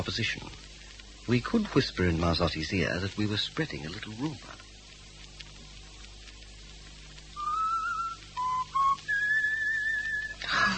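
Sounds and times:
speech: 0.0 - 0.6, 1.3 - 4.6
faint hum: 0.0 - 10.7
person whistling a short wavering tune: 7.4 - 10.4.

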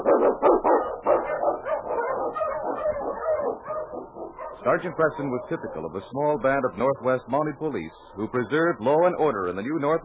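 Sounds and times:
husky sled dog barking and yipping: 0.0 - 5.9
speech: 4.6 - 10.0.

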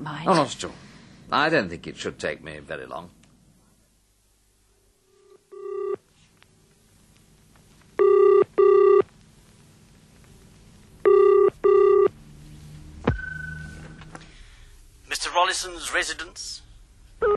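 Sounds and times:
speech: 0.1 - 3.2, 15.5 - 17.3
telephone line tone: 5.2 - 6.0, 8.0 - 9.0, 11.0 - 12.1
telephone call dialed from a phone box ringing through the handset: 5.5 - 6.0, 8.0 - 9.0, 11.1 - 12.1.

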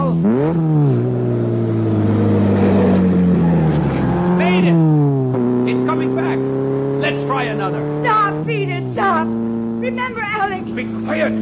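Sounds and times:
car engine drone while speeding into a corner: 0.0 - 11.4
speech: 0.5 - 0.7.

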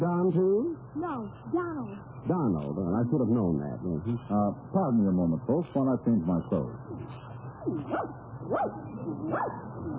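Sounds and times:
low steady hum: 0.0 - 9.9
speech: 0.0 - 9.9
small dog yipping and barking: 7.6 - 9.6.

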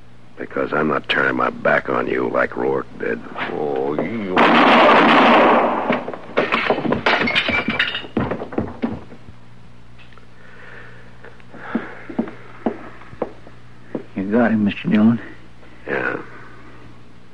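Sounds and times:
speech: 0.4 - 5.5, 14.6 - 15.3
sharp clattering knocks and breaking crashes: 4.0 - 9.2
loud gunshot in a Western standoff: 4.4 - 6.0.

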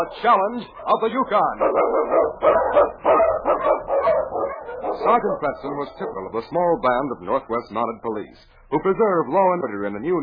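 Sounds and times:
speech: 0.0 - 3.7, 5.0 - 10.2
Eskimo sled lead dog barking in storm and snow: 0.0 - 6.4.

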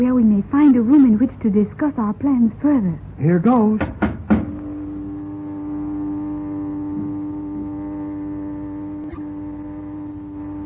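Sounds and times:
speech: 0.0 - 4.0
noisy elevator running with mechanical drone and whining hum: 0.0 - 10.6
rattling knock of elevator: 3.8 - 4.6.

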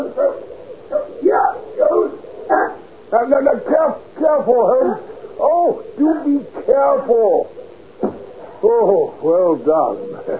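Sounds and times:
dog barking and yelping: 0.1 - 2.9
speech: 3.2 - 5.1, 5.7 - 7.5, 8.6 - 10.3.

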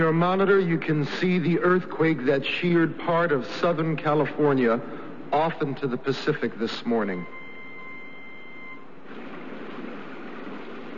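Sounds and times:
speech: 0.0 - 7.4
faint electronic tone: 7.1 - 9.1
heavy monsoon rain pouring: 9.0 - 10.9.

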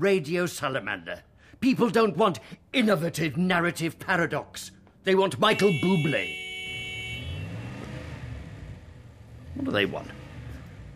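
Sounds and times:
speech: 0.0 - 6.4, 9.6 - 10.2
mud-splattered 4x4 engine revving with a throaty low drone: 6.6 - 10.9.

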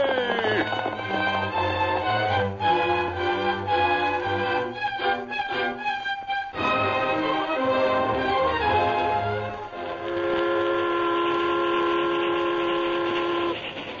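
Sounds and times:
steam train rushing along with a rumbling chugging roar: 0.0 - 5.9, 6.7 - 13.9
steam train whistle blowing: 8.3 - 13.6.

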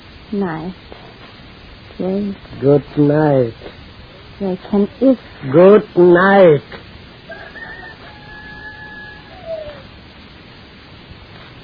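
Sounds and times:
steady hiss: 0.0 - 11.6
speech: 0.3 - 1.0, 2.0 - 3.7, 4.4 - 6.8
rooster crowing: 7.2 - 10.0.

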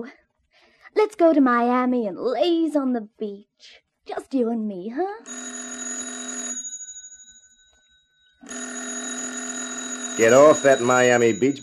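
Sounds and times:
speech: 0.0 - 0.2, 0.9 - 5.6, 10.2 - 11.6
old-fashioned telephone bell ringing: 5.2 - 11.6.

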